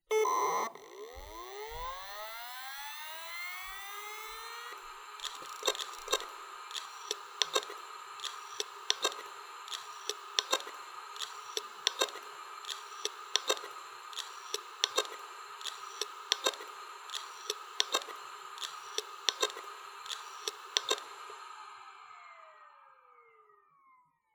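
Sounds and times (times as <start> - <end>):
Seagate ST2000DM001 hard drive clicking and grinding: 0.1 - 21.3.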